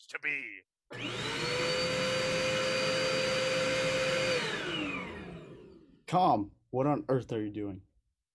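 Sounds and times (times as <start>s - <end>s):
speech: 0.1s - 2.0s, 6.1s - 7.9s
vacuum cleaner vacuuming the bridge: 0.9s - 6.0s.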